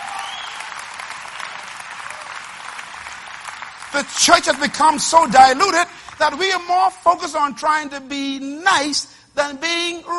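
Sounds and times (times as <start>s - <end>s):
audience clapping: 0.0s - 7.0s
speech: 3.9s - 10.1s.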